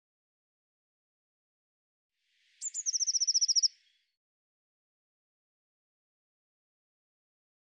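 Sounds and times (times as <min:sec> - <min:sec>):
Eurasian blue tit calling: 0:02.6 - 0:03.8.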